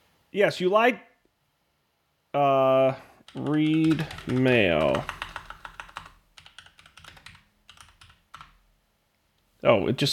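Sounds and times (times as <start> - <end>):
speech: 0.3 - 1.1, 2.3 - 5.2, 9.6 - 10.1
fingers typing on a computer keyboard: 3.3 - 8.6.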